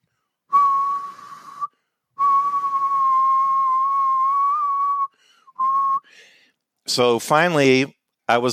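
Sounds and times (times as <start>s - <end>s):
person whistling a pop song tune: 0.5s - 6.2s
speech: 6.9s - 8.5s.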